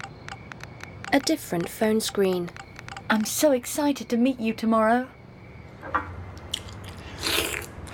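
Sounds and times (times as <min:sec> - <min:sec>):
speech: 0:01.1 - 0:05.2
man biting and chewing stewed pork and a Chinese dumpling: 0:06.4 - 0:07.9.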